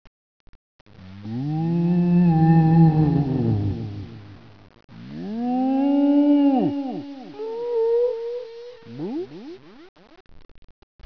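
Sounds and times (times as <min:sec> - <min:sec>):
mooing: 0:01.2 - 0:04.3, 0:05.0 - 0:08.2.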